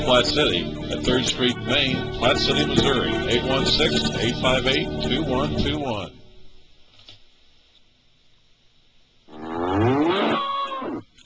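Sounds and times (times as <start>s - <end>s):
speech: 0.1s - 6.2s
cow mooing: 9.3s - 11.0s.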